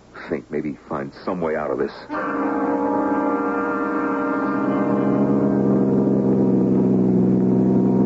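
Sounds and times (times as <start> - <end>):
speech: 0.3 - 3.2
convertible car engine droning as the vehicle drives along: 2.1 - 8.0.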